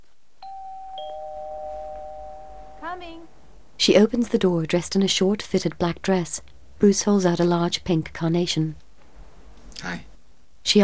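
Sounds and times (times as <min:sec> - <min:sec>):
doorbell two-tone ding-dong at a front door: 0:00.4 - 0:03.1
speech: 0:03.0 - 0:08.8, 0:09.8 - 0:10.8.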